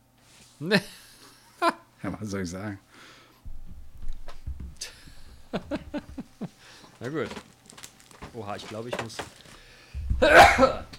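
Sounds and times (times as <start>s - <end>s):
speech: 0.6s - 1.0s, 1.6s - 3.2s, 5.5s - 6.1s, 7.0s - 7.5s, 8.4s - 9.4s, 10.2s - 10.9s
laughter: 4.8s - 6.6s
person sneezing: 10.2s - 10.9s.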